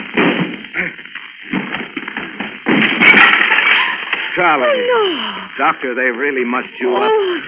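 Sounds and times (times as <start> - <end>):
big crash of breaking wood: 0.0 - 4.7
door being crashed down with splintering wood: 1.5 - 4.6
speech: 4.4 - 7.4.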